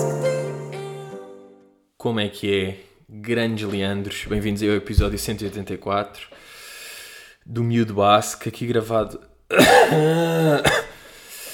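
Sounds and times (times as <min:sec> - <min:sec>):
speech: 0:02.0 - 0:06.6, 0:07.4 - 0:10.9
person coughing after a hard night: 0:09.5 - 0:11.0.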